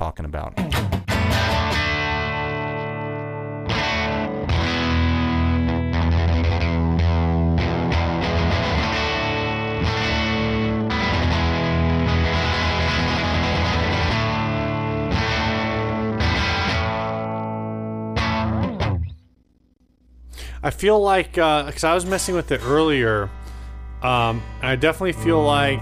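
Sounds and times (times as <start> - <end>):
speech: 0.2 - 1.4, 20.8 - 23.4, 24.0 - 25.8
electric guitar through a light-gain overdrive pedal strumming chords: 0.6 - 25.8.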